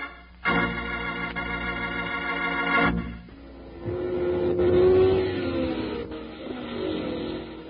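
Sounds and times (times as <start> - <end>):
sustained high-pitched whine: 0.6 - 7.6
souped-up hot rod race car engines revving on a track: 3.5 - 7.6.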